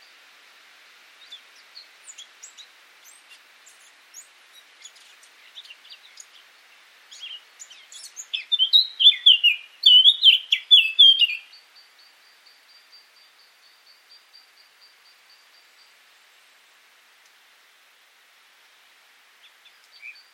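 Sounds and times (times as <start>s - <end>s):
Eurasian blackcap singing scratchy warbling and fluty whistled phrase: 1.2s - 16.4s, 19.4s - 20.3s.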